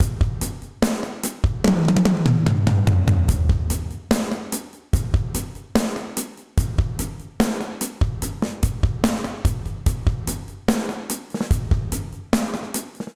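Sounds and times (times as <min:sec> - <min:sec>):
session drums fill with dark plate reverb: 0:00.0 - 0:13.1.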